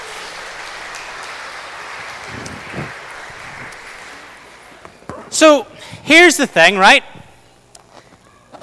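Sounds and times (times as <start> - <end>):
audience applause: 0.0 - 5.0
speech: 5.4 - 7.1.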